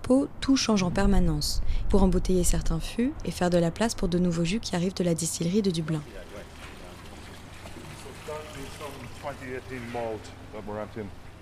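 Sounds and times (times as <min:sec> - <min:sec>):
speech: 0:00.1 - 0:06.3, 0:08.7 - 0:11.2
whisky pouring from pierced casks into a large trough at a whisky warehouse: 0:06.0 - 0:10.6.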